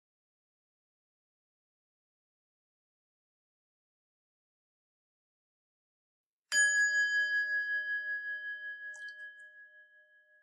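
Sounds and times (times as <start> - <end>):
meditation bell struck and ringing: 6.5 - 10.4.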